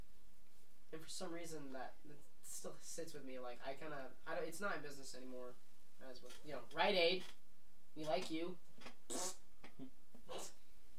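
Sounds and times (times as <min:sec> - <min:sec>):
speech: 0:00.9 - 0:07.4, 0:08.0 - 0:10.5
fart noise: 0:08.8 - 0:10.6.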